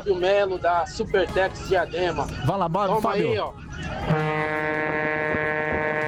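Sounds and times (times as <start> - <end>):
speech: 0.0 - 5.1
loud deep vehicle horn blaring: 4.0 - 6.0.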